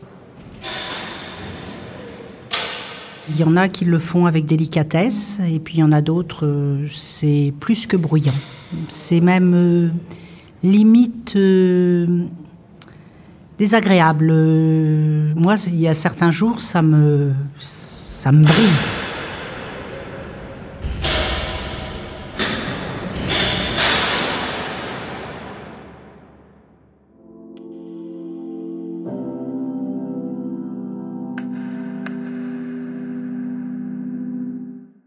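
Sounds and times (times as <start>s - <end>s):
heavy metal bolts and locks of a prison cell door clanking and slamming: 2.5s - 3.2s, 20.8s - 25.3s
speech: 3.3s - 12.4s, 13.6s - 19.1s.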